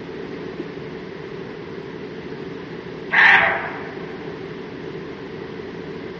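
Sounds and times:
constant noisy background: 1.5s - 6.1s
roe deer bark: 3.1s - 4.4s.

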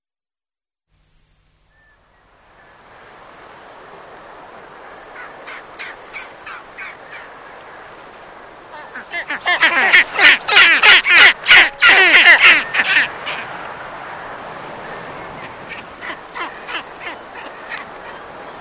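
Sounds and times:
background hiss: 0.9s - 18.5s
south polar skua harsh calls: 5.0s - 7.4s, 8.6s - 13.6s, 14.6s - 18.5s.

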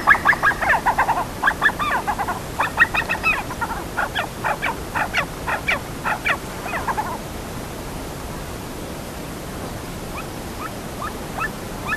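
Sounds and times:
Himalayan snowcock giving harsh cackling notes: 0.0s - 7.2s, 10.6s - 11.9s.

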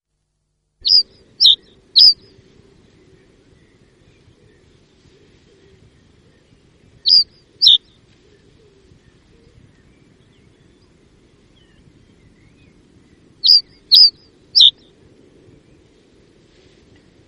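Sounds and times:
common reed bunting giving short high downward-sliding calls: 0.8s - 3.0s, 7.1s - 9.6s, 13.4s - 14.8s.

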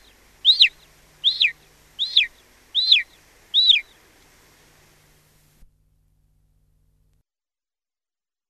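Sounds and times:
golden eagle repeating a high thin yelp: 0.4s - 3.9s.

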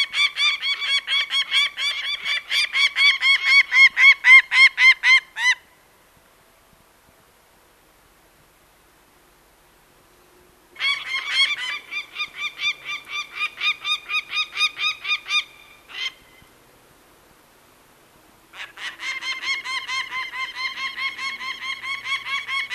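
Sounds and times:
peregrine falcon giving harsh grating kak calls: 0.0s - 5.6s, 10.8s - 16.5s, 18.5s - 22.7s.

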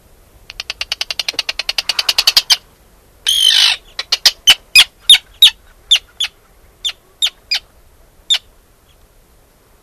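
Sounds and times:
Arctic tern calling in short harsh notes, rasping screech and kik notes: 0.5s - 7.6s.

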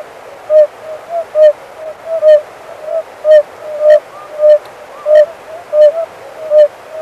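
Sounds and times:
Oriental fire-bellied toad calling with rounded hoot notes: 0.5s - 6.7s
faint ticks: 4.5s - 4.8s.

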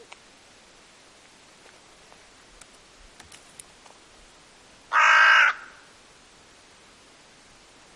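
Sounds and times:
hooded crow harsh hoarse caw: 4.9s - 5.9s.

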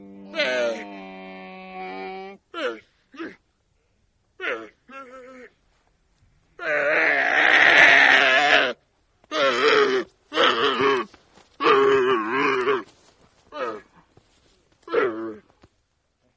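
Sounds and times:
dromedary calls: 0.0s - 3.4s, 6.6s - 14.0s, 14.8s - 15.5s.

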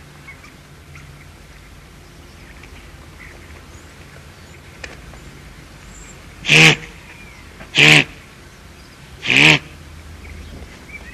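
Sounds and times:
guanaco uttering harsh nasal bleat-like calls: 6.4s - 8.3s, 9.2s - 9.8s.

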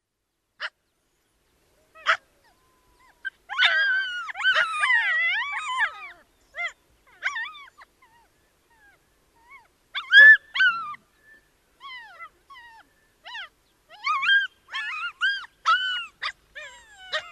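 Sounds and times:
Ethiopian wolves howling: 2.0s - 8.2s, 11.9s - 17.3s
Ethiopian wolf yelping: 2.0s - 11.0s, 11.8s - 17.3s.

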